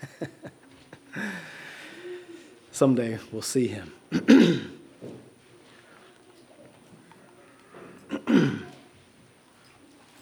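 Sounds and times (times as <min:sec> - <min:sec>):
speech: 0:02.8 - 0:04.7
throat clearing to dislodge something stuck in the throat: 0:04.1 - 0:04.8, 0:08.1 - 0:08.8.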